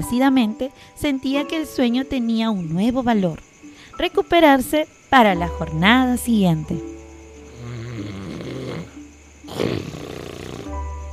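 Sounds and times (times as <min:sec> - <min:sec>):
speech: 0:00.0 - 0:07.0
sleeping bear snoring: 0:07.5 - 0:11.0.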